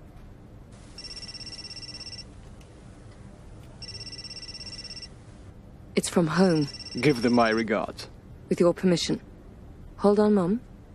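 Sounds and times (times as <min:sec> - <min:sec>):
low rumble: 0:00.0 - 0:10.9
telephone ringing with buzzing trill: 0:00.9 - 0:02.3, 0:03.8 - 0:05.2, 0:06.5 - 0:07.7
speech: 0:06.0 - 0:09.3, 0:10.0 - 0:10.7.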